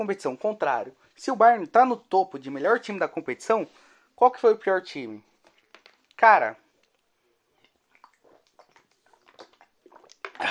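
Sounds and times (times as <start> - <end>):
speech: 0.0 - 5.3, 6.2 - 6.6
person drinking water with soft wet gulps: 7.0 - 10.5
small mouth clicks: 7.6 - 10.5.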